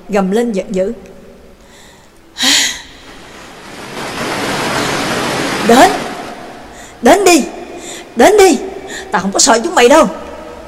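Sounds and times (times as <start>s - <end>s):
speech: 0.1s - 1.1s, 5.7s - 6.1s, 7.0s - 7.6s, 8.2s - 10.3s
broad rushing hiss of water: 2.4s - 7.0s
large ocean wave crashing: 2.9s - 7.7s.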